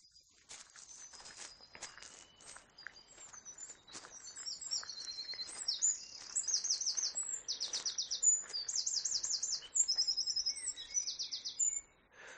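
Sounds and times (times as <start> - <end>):
other birds chirping: 0.0 - 12.3
footsteps: 0.4 - 6.4
male Eurasian wren singing in a bush or hedgerow at dawn: 2.3 - 12.0.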